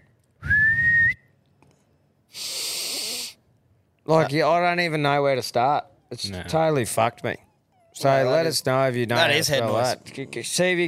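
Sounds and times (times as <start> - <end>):
person whistling a short steady note: 0.0 - 1.3
longer airy hiss: 2.3 - 3.4
speech: 4.1 - 10.8.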